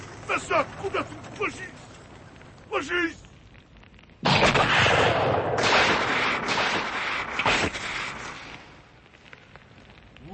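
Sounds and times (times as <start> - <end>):
rumbling fire: 0.0 - 10.3
speech: 0.3 - 1.9, 2.7 - 3.2
rockets and gas exploding together: 4.2 - 8.2.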